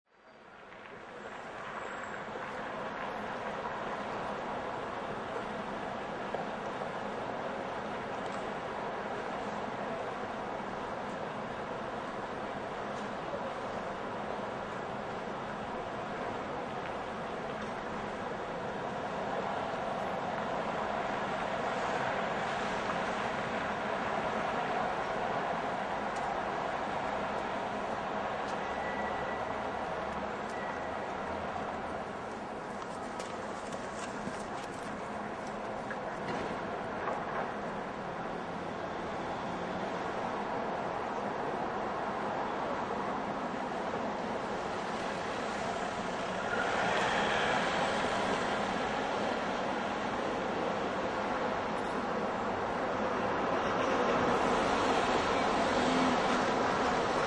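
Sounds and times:
cars driving by at city intersection: 0.7s - 57.2s
footsteps at city intersection: 32.3s - 35.6s.

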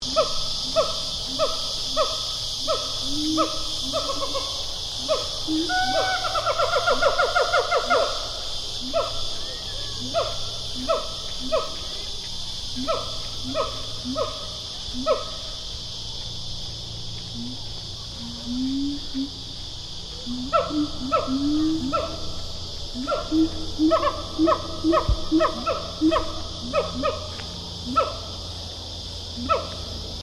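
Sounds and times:
Siamang gibbon pair calling in a zoo habitat: 0.1s - 11.8s, 12.7s - 15.4s, 20.2s - 28.3s, 29.4s - 29.8s.

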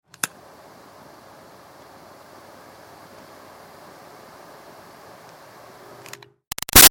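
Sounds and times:
small butane torch lighter flame: 0.2s - 6.2s.

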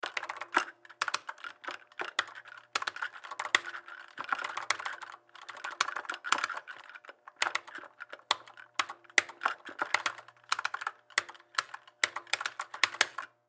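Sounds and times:
arcade joystick movement: 0.0s - 13.4s
arcade game play button presses: 7.3s - 13.3s.

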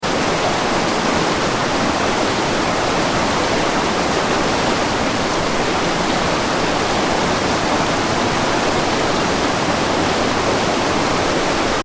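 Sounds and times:
shallow fast-flowing river: 0.0s - 11.8s.

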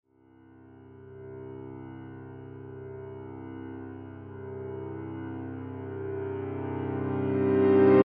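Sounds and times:
reversed piano chord: 2.3s - 8.0s.

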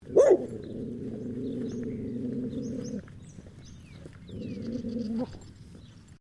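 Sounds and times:
Blue Heeler dog growling: 0.0s - 3.1s, 4.2s - 5.4s
Blue Heeler dog barking: 0.1s - 0.6s.

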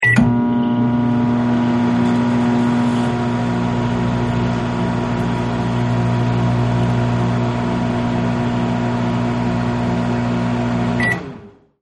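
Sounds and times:
microwave key beep: 0.0s - 1.2s, 11.0s - 11.2s
microwave activated and stopping: 0.0s - 11.7s.

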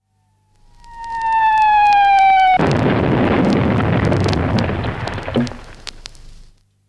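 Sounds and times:
artillery shell whining: 0.4s - 2.7s
artillery shell exploding: 2.5s - 6.1s.

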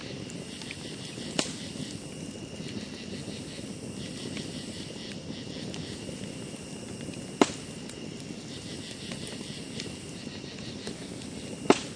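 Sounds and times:
campfire crackling: 0.0s - 11.9s
crickets chirring at a campsite: 0.0s - 11.9s
sharp snap: 7.4s - 7.7s, 11.7s - 11.9s.

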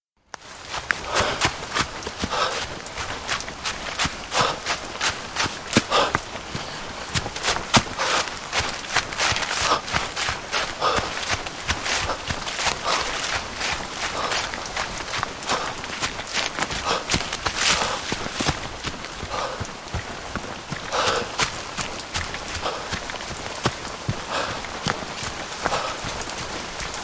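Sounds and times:
rain in rural landscape: 0.3s - 27.0s
out of breath man jogging in rain through rural landscape: 0.5s - 27.0s.

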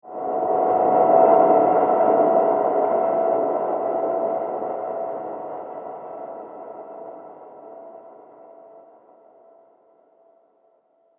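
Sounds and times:
frightening horror soundscape transition: 0.1s - 8.9s.

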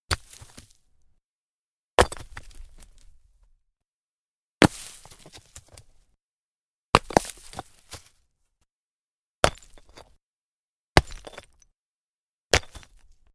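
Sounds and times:
stone falling onto hard dirt ground and settling: 0.1s - 0.8s, 2.0s - 3.2s, 4.6s - 6.0s, 6.9s - 8.2s, 9.4s - 10.2s, 11.0s - 11.7s, 12.5s - 13.3s.

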